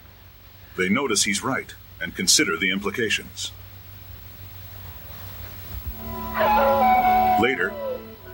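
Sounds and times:
speech: 0:00.8 - 0:03.6, 0:07.4 - 0:07.8
coyote howling at night: 0:06.0 - 0:08.3.

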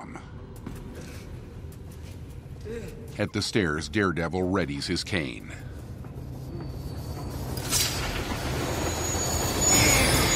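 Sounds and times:
speech: 0:02.7 - 0:05.7
train rumbling at a station platform: 0:05.4 - 0:10.3
thin metallic wheel squeal of a train: 0:06.7 - 0:10.3.

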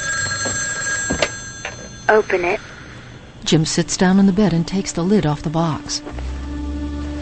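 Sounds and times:
telephone ringing with a bright electronic tone: 0:00.0 - 0:03.4
speech: 0:02.1 - 0:02.7, 0:03.4 - 0:06.1.

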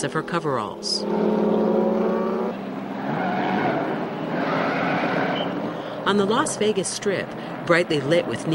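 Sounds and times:
speech: 0:00.0 - 0:01.8, 0:06.1 - 0:08.5
race car engines revving with harmonic whine: 0:00.0 - 0:08.5
race car tires squealing and skidding in a burnout: 0:01.1 - 0:06.8.

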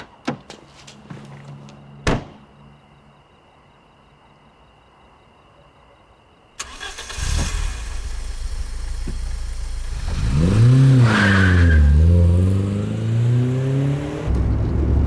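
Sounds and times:
car engine starting and revving as the car drives off: 0:06.6 - 0:15.0.

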